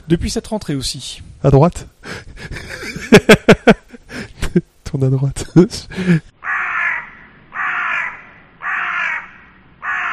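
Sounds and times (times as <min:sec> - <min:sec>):
speech: 0:00.1 - 0:03.8, 0:04.9 - 0:06.3
laughter: 0:02.1 - 0:04.6
crow cawing harshly: 0:06.4 - 0:10.1.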